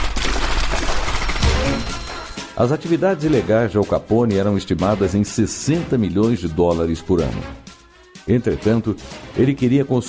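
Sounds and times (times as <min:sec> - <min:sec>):
Thompson submachine gun bursts: 0:00.0 - 0:02.4
speech: 0:02.6 - 0:10.0.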